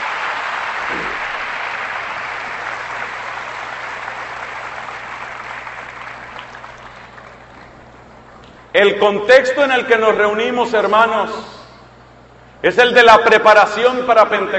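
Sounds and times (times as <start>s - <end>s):
church audience applauding at an evening gathering: 0.0s - 8.7s
speech: 8.8s - 11.6s, 12.6s - 14.5s.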